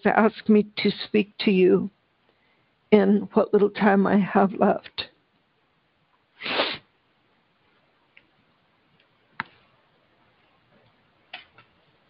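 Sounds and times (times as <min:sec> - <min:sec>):
speech: 0:00.0 - 0:02.0, 0:02.9 - 0:05.1
person sniffing: 0:06.4 - 0:06.9.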